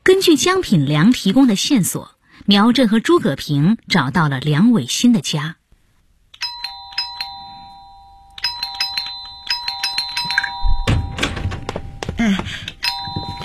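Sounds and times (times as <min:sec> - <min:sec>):
speech: 0:00.1 - 0:05.6
electronic doorbell two-tone chime at a home's door: 0:06.4 - 0:13.4
dull thunks: 0:10.6 - 0:13.4.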